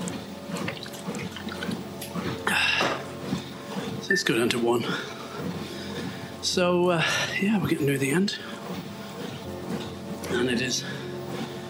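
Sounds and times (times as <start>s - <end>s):
person drinking water: 0.0s - 4.0s
speech: 4.1s - 5.6s, 6.4s - 8.6s, 10.4s - 11.0s.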